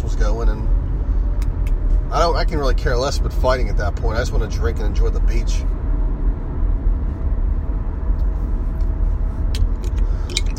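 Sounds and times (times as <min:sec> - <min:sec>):
car engine and road noise driving in road traffic: 0:00.0 - 0:10.5
speech: 0:00.2 - 0:00.9, 0:02.1 - 0:05.8.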